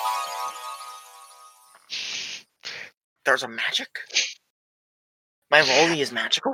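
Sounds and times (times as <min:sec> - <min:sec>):
phone ringtone, bright electronic tone: 0:00.0 - 0:01.9
speech: 0:03.2 - 0:04.3, 0:05.5 - 0:06.5.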